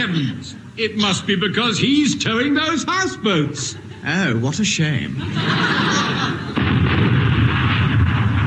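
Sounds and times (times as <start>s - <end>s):
speech: 0.0s - 6.5s
laughter: 3.3s - 6.6s
destroyer's 4-inch naval gun firing: 6.6s - 8.4s.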